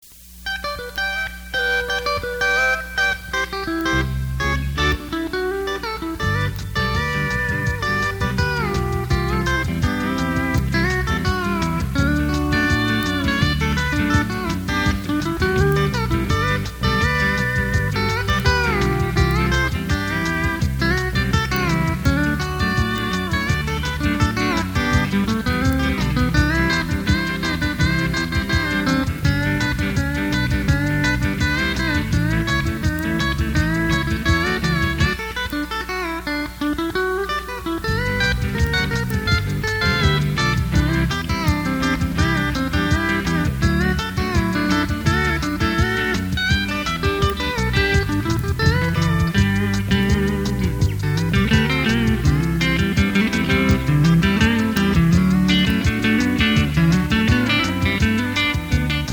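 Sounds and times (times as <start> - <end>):
steel guitar: 0.0 - 59.1.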